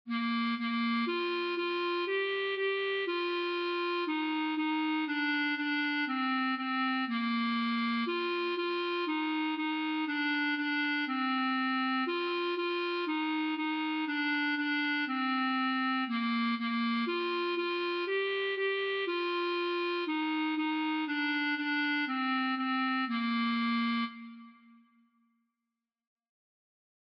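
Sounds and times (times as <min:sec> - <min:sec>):
clarinet melody: 0:00.1 - 0:24.9.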